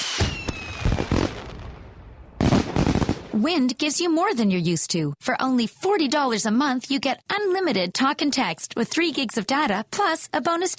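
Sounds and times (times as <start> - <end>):
celebratory firework whistling launch: 0.0 - 1.8
celebratory fireworks crackling bursts, pops and booms: 0.0 - 3.4
speech: 3.4 - 10.7.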